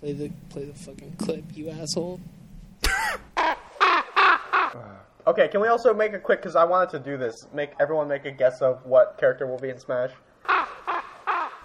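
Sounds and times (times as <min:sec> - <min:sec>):
speech: 0:00.0 - 0:03.3, 0:04.7 - 0:10.3
raven cawing: 0:02.8 - 0:04.8, 0:10.4 - 0:11.6
laughter: 0:02.8 - 0:04.9, 0:10.5 - 0:11.6.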